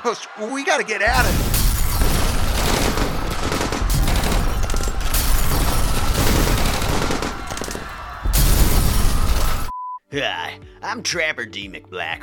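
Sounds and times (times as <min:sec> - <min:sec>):
speech: 0:00.0 - 0:01.7, 0:10.1 - 0:12.2
gunfire sound effect: 0:01.1 - 0:09.7.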